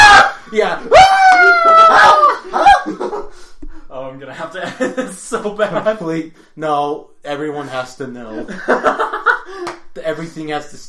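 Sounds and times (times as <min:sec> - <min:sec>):
person mock screaming imitating a man on fire: 0:00.0 - 0:02.9
laughter: 0:00.4 - 0:03.4, 0:04.5 - 0:06.0, 0:08.3 - 0:09.7
speech: 0:04.9 - 0:10.8.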